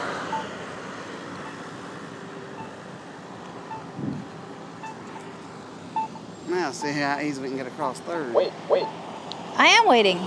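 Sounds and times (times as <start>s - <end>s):
street traffic roaring at South 3rd Street and Kingston Avenue: 0.0s - 10.2s
vehicles passing: 0.0s - 10.2s
faint beeping tones: 0.3s - 0.5s, 2.3s - 2.9s, 3.6s - 4.0s, 4.7s - 5.2s, 5.9s - 7.5s, 8.3s - 9.0s
speech: 6.6s - 10.2s.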